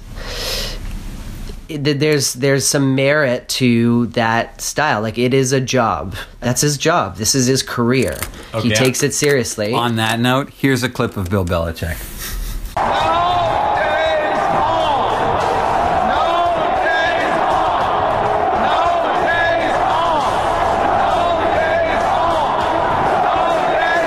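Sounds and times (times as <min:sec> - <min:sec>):
speech: 0:01.7 - 0:12.4
large crowd chanting at a celebration: 0:12.8 - 0:24.0.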